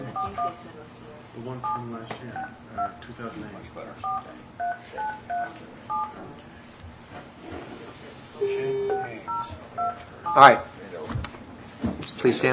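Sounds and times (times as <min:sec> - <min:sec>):
speech: 0:00.4 - 0:10.8, 0:11.8 - 0:12.5
touch-tone dialing of a telephone number: 0:04.0 - 0:06.2, 0:08.4 - 0:10.5
steady telephone tone: 0:08.4 - 0:09.9.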